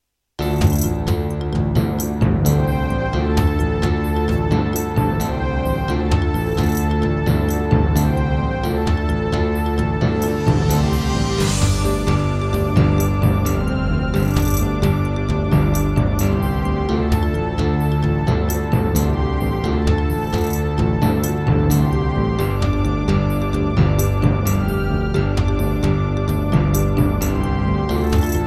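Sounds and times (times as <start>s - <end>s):
Korg NS5R: 0.4s - 28.4s.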